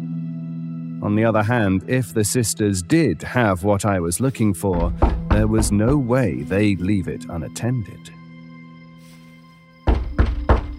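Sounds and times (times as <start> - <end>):
speech: 1.0 - 8.2
hand pounding: 4.7 - 6.1, 9.9 - 10.7.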